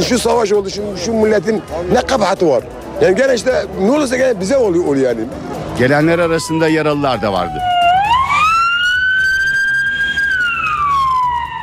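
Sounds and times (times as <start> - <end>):
speech: 0.0 - 7.7
steady low rumble of traffic or engine noise: 0.0 - 11.6
loud ambulance siren wailing: 6.0 - 11.6.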